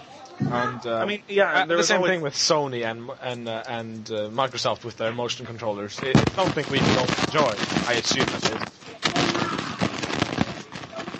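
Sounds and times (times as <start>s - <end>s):
speech: 0.5s - 9.0s
fire crackling and popping: 5.4s - 11.1s
fire burning with a steady roar: 6.0s - 11.1s.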